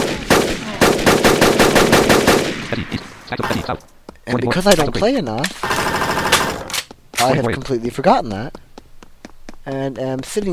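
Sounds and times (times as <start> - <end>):
burst-mode weapon firing in a video game: 0.0 - 3.6, 5.6 - 7.3
speech: 2.7 - 5.8, 7.2 - 8.6, 9.6 - 10.5.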